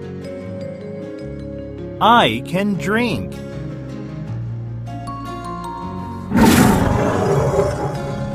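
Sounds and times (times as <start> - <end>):
speech: 2.0 - 3.4
tiger growling: 6.3 - 8.3.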